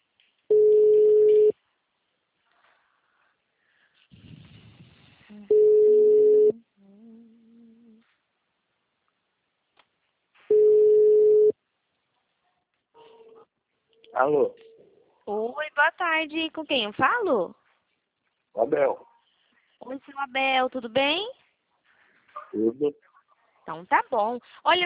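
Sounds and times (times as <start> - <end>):
telephone line ringing tone: 0.5 - 1.5, 5.5 - 6.5, 10.5 - 11.6
speech: 14.2 - 14.7, 15.5 - 17.6, 18.6 - 19.1, 19.8 - 21.4, 22.5 - 23.0, 23.7 - 24.8.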